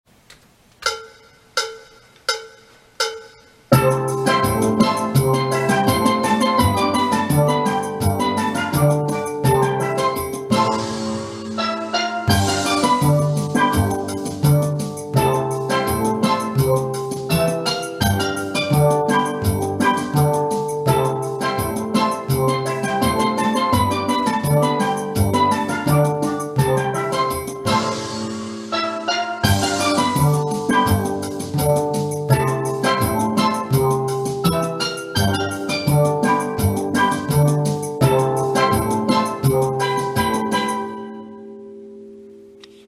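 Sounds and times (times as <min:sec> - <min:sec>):
steel band playing bass phrases tutti: 0:03.7 - 0:40.9.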